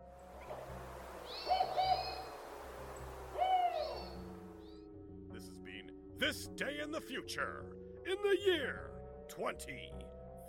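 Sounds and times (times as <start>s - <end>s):
northern spotted owl hooting: 1.2s - 2.5s, 3.3s - 4.3s
speech: 6.2s - 10.2s.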